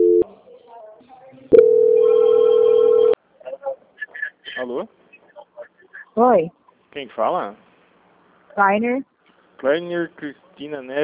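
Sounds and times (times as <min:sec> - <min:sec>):
telephone ringback tone during call transfer: 0:00.0 - 0:00.2, 0:01.5 - 0:03.2
speech: 0:04.8 - 0:05.0, 0:06.2 - 0:07.7, 0:08.6 - 0:11.0.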